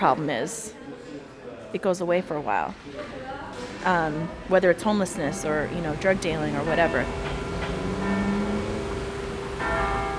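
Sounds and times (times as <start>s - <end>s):
speech: 0.0s - 0.8s, 1.7s - 7.4s
church bell ringing: 5.3s - 10.1s.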